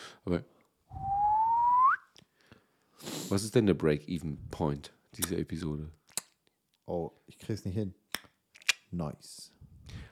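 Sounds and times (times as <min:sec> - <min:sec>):
speech: 0:00.2 - 0:01.2, 0:03.3 - 0:06.0, 0:06.9 - 0:08.0, 0:08.9 - 0:10.0
breathy human whistle: 0:00.9 - 0:02.1.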